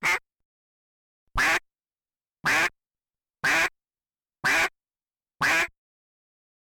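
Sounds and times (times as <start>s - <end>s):
duck quacking: 0.0s - 0.2s, 1.4s - 1.6s, 2.4s - 2.7s, 3.4s - 3.7s, 4.4s - 4.7s, 5.4s - 5.7s.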